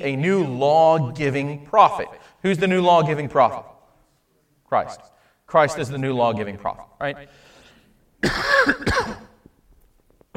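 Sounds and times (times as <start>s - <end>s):
speech: 0.0s - 3.7s, 4.7s - 7.4s, 8.2s - 9.2s
loud throat clearing: 8.2s - 9.4s
short rough cough: 8.2s - 9.4s.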